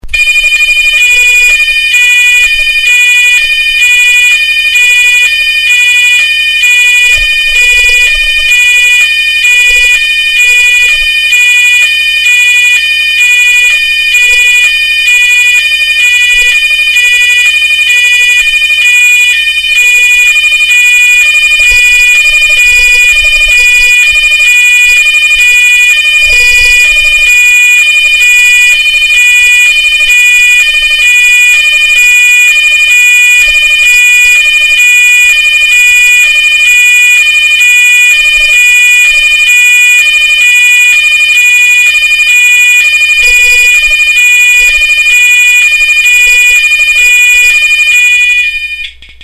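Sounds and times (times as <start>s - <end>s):
Cerberus Pyrotronics MTL S15 alarm hi-lo tone: 0.0s - 49.0s.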